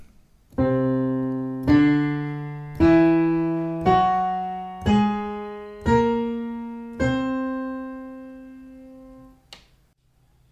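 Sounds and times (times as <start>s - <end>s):
piano notes climbing a whole-tone scale: 0.6s - 9.4s.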